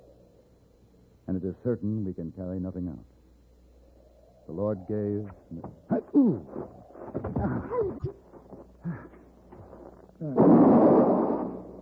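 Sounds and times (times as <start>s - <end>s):
quiet tonal sounds: 0.0s - 11.8s
speech: 1.3s - 3.2s, 4.5s - 8.2s, 10.2s - 10.6s
rifle shot: 10.4s - 11.8s.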